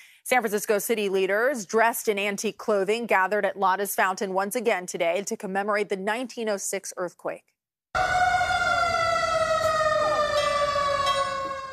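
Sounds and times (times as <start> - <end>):
speech: 0.3 - 8.3
sirens in San Francisco commemorating the 1906 earthquake: 8.0 - 11.7.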